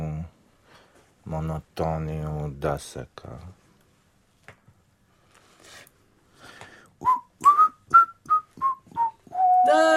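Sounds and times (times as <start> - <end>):
speech: 1.3 - 3.6
worker whistling while working: 7.0 - 9.9.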